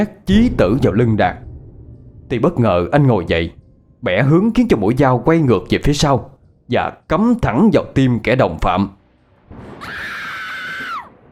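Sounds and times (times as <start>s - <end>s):
speech: 0.0s - 1.4s, 2.3s - 10.1s
shrill high-pitched scream: 9.8s - 11.2s.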